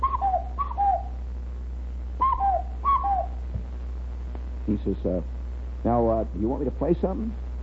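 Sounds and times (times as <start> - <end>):
person whistling an imitation of a cuckoo call: 0.0 - 1.2, 2.2 - 3.4
steady low hum: 0.0 - 7.6
speech: 4.7 - 7.4.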